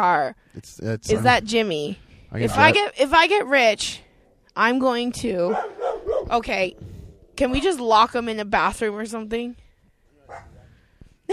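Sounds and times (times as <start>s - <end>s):
speech: 0.0s - 4.0s, 4.6s - 9.6s, 10.3s - 10.5s
dog barking: 5.5s - 6.4s, 10.3s - 10.6s.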